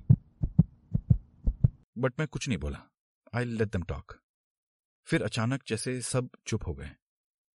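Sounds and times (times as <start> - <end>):
fast heartbeat sound effect: 0.0 - 1.8
speech: 2.0 - 4.2, 5.0 - 7.0.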